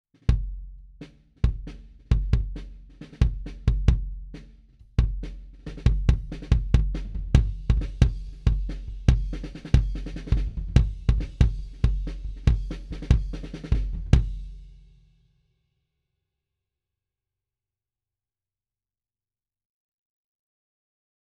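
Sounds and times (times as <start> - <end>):
snare drum: 0.2 - 14.7.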